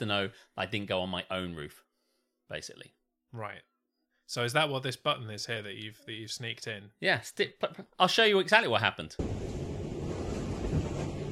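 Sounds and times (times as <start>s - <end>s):
speech: 0.0s - 1.9s, 2.5s - 3.7s, 4.3s - 9.6s
strong wind roaring outdoors: 9.2s - 11.3s.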